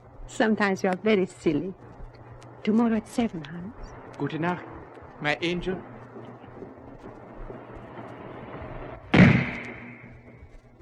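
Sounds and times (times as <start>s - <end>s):
speech: 0.3s - 1.9s, 2.6s - 5.9s
sniper rifle shot: 7.5s - 10.4s.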